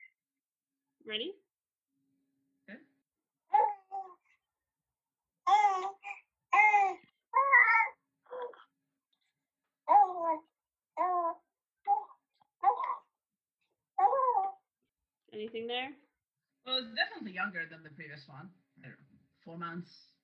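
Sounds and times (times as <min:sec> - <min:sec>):
speech: 0:01.1 - 0:01.4, 0:17.4 - 0:20.1
baby about three months old babbling: 0:03.5 - 0:04.3, 0:05.5 - 0:08.7, 0:09.8 - 0:13.2, 0:14.0 - 0:14.7.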